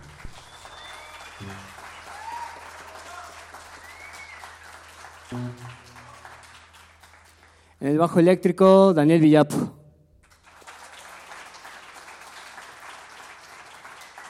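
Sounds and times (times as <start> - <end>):
brief cheers: 0.0 - 6.5
audience applause at a live music performance: 0.0 - 7.7, 10.2 - 14.2
speech: 1.4 - 1.8, 5.3 - 5.9, 7.8 - 9.8
low musical notes: 5.3 - 6.4.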